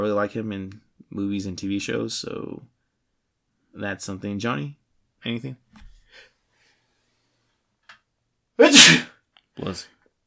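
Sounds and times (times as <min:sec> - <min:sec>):
speech: 0:00.1 - 0:02.7, 0:03.8 - 0:05.6, 0:08.6 - 0:09.0, 0:09.6 - 0:10.0
person sniffing: 0:08.6 - 0:09.1
person sneezing: 0:08.6 - 0:09.2.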